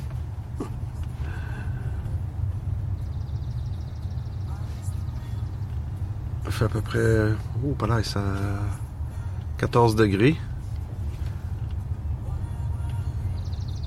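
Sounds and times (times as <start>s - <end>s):
heavy rumble of passing traffic: 0.0s - 13.8s
wind: 0.0s - 13.8s
birds chirping outdoors beside a road: 0.4s - 13.8s
short rapid bird trill: 3.0s - 5.6s, 13.2s - 13.8s
speech: 6.5s - 8.8s, 9.6s - 10.5s.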